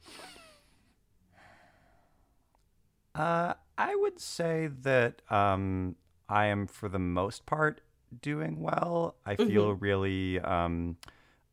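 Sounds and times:
deep breath: 0:00.0 - 0:02.4, 0:11.1 - 0:11.5
speech: 0:03.2 - 0:11.5.

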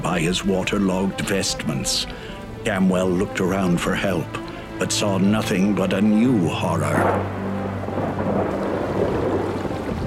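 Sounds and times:
pouring rain in a lightning storm over a city: 0:00.0 - 0:10.0
speech: 0:00.2 - 0:07.4
heavy thunder rumbling in a lightning storm over a city: 0:06.9 - 0:10.0.

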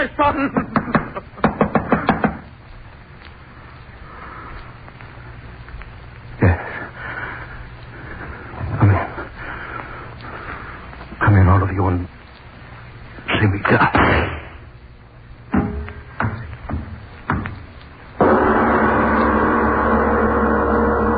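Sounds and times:
speech: 0:00.0 - 0:00.8
low steady noise: 0:00.0 - 0:21.1
laughter: 0:00.3 - 0:02.1
sharp knocks on a door: 0:00.7 - 0:02.4
heavier thumps against a door: 0:13.9 - 0:14.8, 0:15.4 - 0:21.1.

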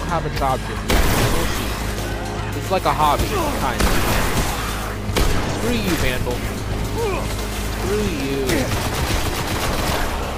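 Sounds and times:
speech: 0:00.1 - 0:01.8, 0:02.6 - 0:04.4, 0:05.6 - 0:08.9
shotgun gunfire in a video game battle: 0:00.8 - 0:01.6, 0:03.3 - 0:06.2, 0:08.5 - 0:10.2.

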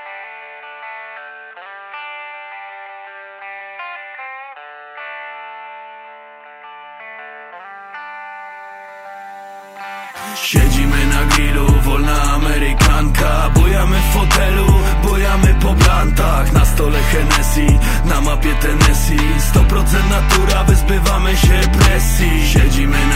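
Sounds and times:
song on the radio with thumping beat and deep bass: 0:07.6 - 0:23.1.

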